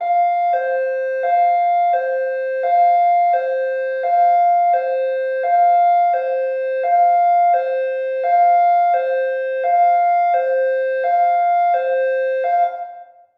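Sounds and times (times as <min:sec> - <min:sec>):
emergency patrol boat siren while docked: 0:00.0 - 0:13.3.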